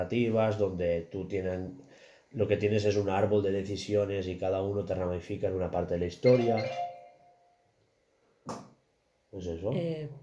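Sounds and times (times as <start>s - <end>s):
speech: 0.0s - 6.9s, 8.5s - 8.7s, 9.3s - 10.2s
computer alarm chiming with a bright ringing electronic tone: 6.2s - 7.6s.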